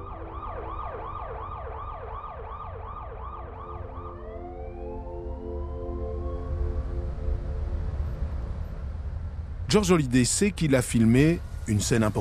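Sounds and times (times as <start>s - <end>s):
ambulance siren yelping and wailing: 0.0s - 9.0s
low rumble of traffic: 0.0s - 12.2s
speech: 9.7s - 12.2s.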